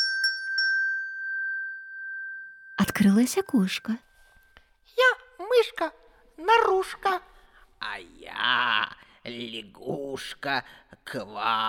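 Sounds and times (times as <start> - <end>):
small bell ringing: 0.0 - 4.6
speech: 2.8 - 4.1, 5.6 - 7.3, 7.9 - 11.6.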